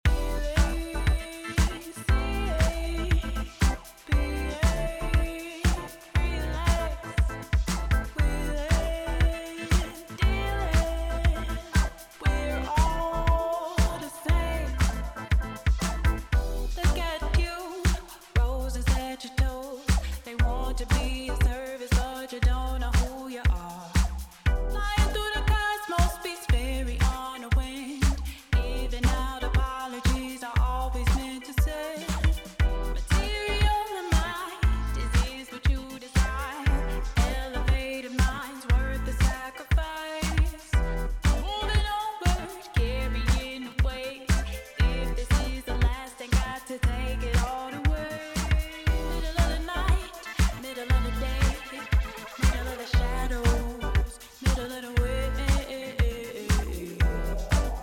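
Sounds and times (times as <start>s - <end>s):
sub bass: 0.0s - 1.2s, 2.1s - 5.4s, 6.2s - 13.4s, 14.0s - 17.5s, 18.4s - 19.0s, 19.9s - 21.5s, 22.4s - 23.1s, 24.0s - 25.6s, 26.5s - 27.1s, 28.1s - 29.6s, 30.6s - 31.2s, 32.1s - 33.8s, 34.6s - 35.3s, 36.2s - 39.4s, 40.2s - 41.8s, 42.8s - 43.4s, 44.3s - 51.6s, 52.4s - 54.1s, 55.0s - 55.7s, 56.6s - 57.8s
vocals: 0.0s - 57.8s.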